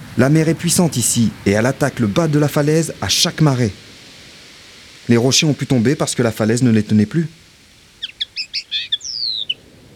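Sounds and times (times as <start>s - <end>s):
speech: 0.2s - 3.9s, 5.1s - 7.4s
bird call whistle blown in high chirps and sliding whistle: 8.0s - 9.6s.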